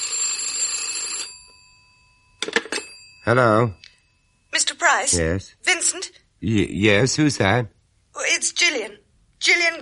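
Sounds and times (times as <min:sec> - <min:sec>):
telephone bell ringing with a harsh metallic jangle: 0:00.0 - 0:04.3
speech: 0:03.2 - 0:03.8, 0:04.6 - 0:08.8, 0:09.5 - 0:09.8.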